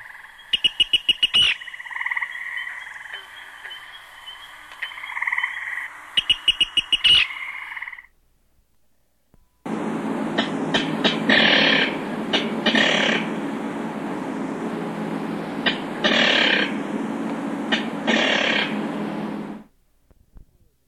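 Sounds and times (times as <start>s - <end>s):
King Rail kikir calls: 0.0s - 8.2s, 9.7s - 19.7s
Virginia Rail kikir calls: 0.0s - 8.2s, 10.3s - 14.0s, 15.5s - 19.7s.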